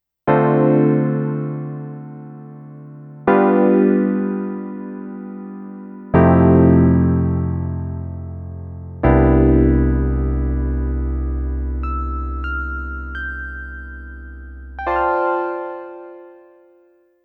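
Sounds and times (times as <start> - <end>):
Startone MK 400 electric piano: 0.3 - 16.9.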